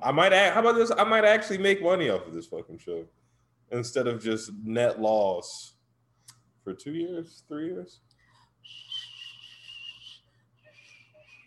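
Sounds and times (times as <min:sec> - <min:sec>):
speech: 0:00.0 - 0:05.7, 0:06.6 - 0:09.1
breathy hissing failed attempt at whistling: 0:08.6 - 0:11.4.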